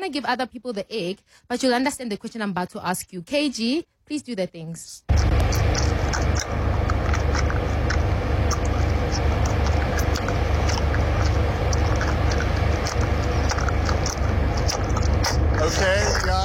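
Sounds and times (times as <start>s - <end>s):
constant noise: 0.0s - 5.1s
speech: 0.0s - 6.8s, 15.6s - 16.4s
person chewing food loudly: 5.1s - 16.4s.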